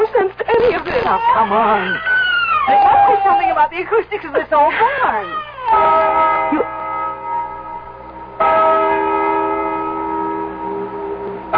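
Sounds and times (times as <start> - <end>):
speech: 1.1 - 2.1, 2.7 - 6.8
large bell tolling: 5.7 - 11.5.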